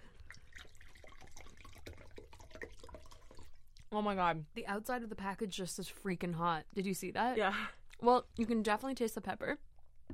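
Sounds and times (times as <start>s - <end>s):
water being poured: 0.0s - 4.0s
speech: 3.9s - 9.7s.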